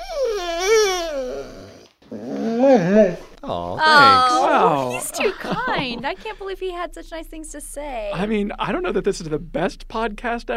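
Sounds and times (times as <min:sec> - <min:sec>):
dog whining: 0:00.0 - 0:04.8
speech: 0:02.7 - 0:10.5
laughter: 0:03.5 - 0:06.7, 0:08.2 - 0:09.2.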